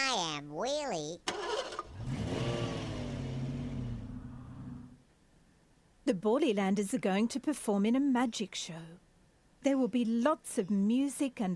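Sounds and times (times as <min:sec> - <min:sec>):
speech: 0:00.4 - 0:01.4, 0:06.1 - 0:09.0, 0:09.6 - 0:11.5
small cartoonish toy car engine revving: 0:01.3 - 0:03.8.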